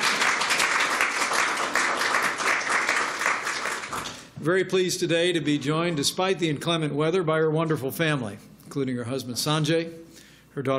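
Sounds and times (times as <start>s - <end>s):
audience applause: 0.0s - 4.3s
speech: 4.4s - 10.7s.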